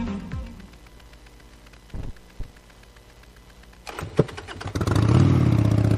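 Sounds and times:
motorcycle engine starting and revving: 0:03.9 - 0:05.9.

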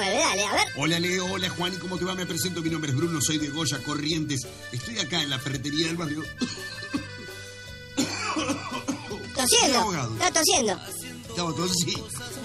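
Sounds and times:
speech: 0:00.0 - 0:07.0, 0:09.4 - 0:12.4
person coughing after choking on yerba mate: 0:06.3 - 0:09.4.

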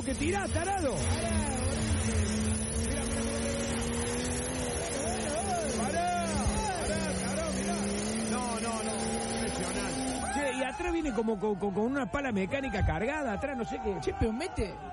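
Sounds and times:
speech: 0:00.0 - 0:02.6, 0:10.5 - 0:14.9
diesel turbo vehicle engine accelerating: 0:00.0 - 0:11.1.

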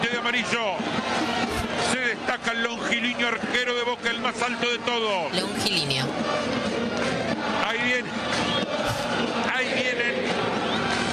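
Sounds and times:
large stadium crowd applauding and cheering: 0:00.0 - 0:11.1
speech: 0:00.3 - 0:01.0, 0:02.2 - 0:10.2.

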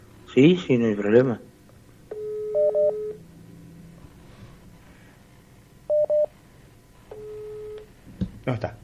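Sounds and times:
speech: 0:00.4 - 0:01.5
steady telephone dialing tone: 0:02.1 - 0:03.2, 0:05.9 - 0:06.3, 0:07.1 - 0:07.9.

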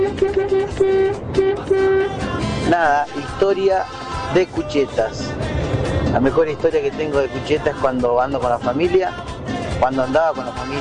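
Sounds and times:
vehicle horn honking: 0:00.0 - 0:03.2
speech: 0:02.8 - 0:05.4, 0:06.1 - 0:10.7.

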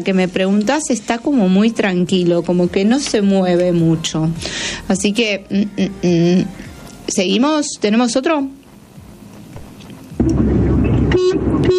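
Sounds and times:
speech: 0:00.0 - 0:08.6
car horn blaring: 0:11.1 - 0:11.7.

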